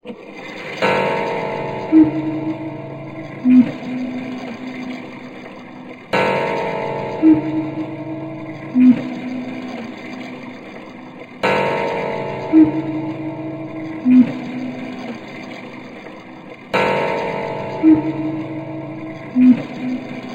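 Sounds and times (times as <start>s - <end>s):
cuckoo clock calling eerily: 0.8s - 5.2s, 6.1s - 10.3s, 11.4s - 15.3s, 16.8s - 20.3s.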